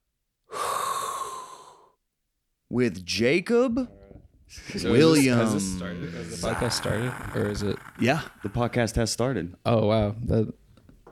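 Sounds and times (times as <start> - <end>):
group inhaling a hot breath together: 0.5 - 2.0, 5.9 - 8.9
speech: 2.7 - 10.6.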